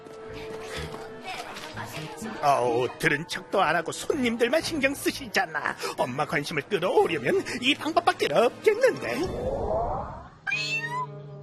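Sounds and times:
speech: 0:02.4 - 0:10.2
cats meowing: 0:10.3 - 0:11.2.

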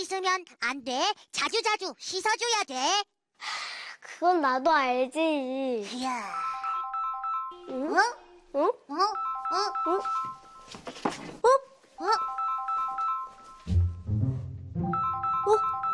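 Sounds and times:
speech: 0:00.0 - 0:06.6, 0:07.7 - 0:12.4
phone ringtone announcing an incoming call: 0:06.3 - 0:07.8, 0:09.1 - 0:10.8, 0:12.0 - 0:14.0, 0:14.8 - 0:15.9.

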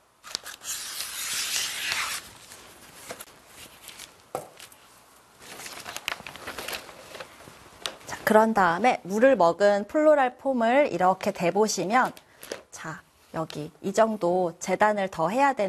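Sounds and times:
OPP plastic film being handled and crinkled: 0:00.2 - 0:08.0
speech: 0:08.3 - 0:12.2, 0:12.8 - 0:15.6.

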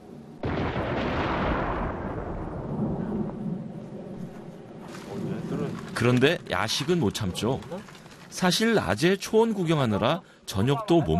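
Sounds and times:
thunder rumbling: 0:00.4 - 0:06.9
speech: 0:06.0 - 0:11.1.

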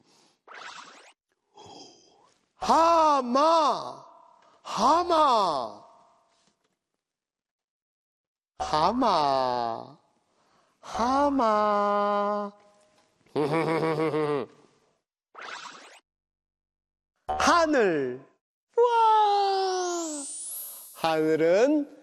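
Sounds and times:
loud drawn-out voiced yawns: 0:01.6 - 0:02.1
speech: 0:02.7 - 0:04.0, 0:04.8 - 0:05.8, 0:08.6 - 0:10.0, 0:10.9 - 0:12.6, 0:13.4 - 0:14.6, 0:17.5 - 0:19.4, 0:21.0 - 0:22.0.

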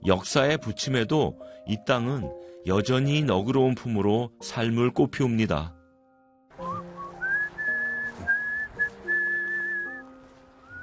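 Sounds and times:
speech: 0:00.0 - 0:05.8
soft steady instrumental accompaniment: 0:00.0 - 0:10.8
person whistling a slow lilting tune: 0:06.6 - 0:10.8.

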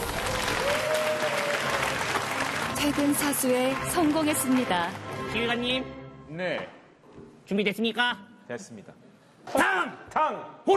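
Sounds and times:
sustained audience applause: 0:00.0 - 0:04.8
speech: 0:02.8 - 0:10.7.

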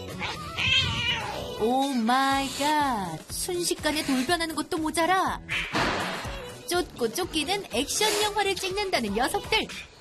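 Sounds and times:
cats meowing at a school: 0:00.2 - 0:01.6
speech: 0:01.6 - 0:05.6, 0:06.7 - 0:09.9.

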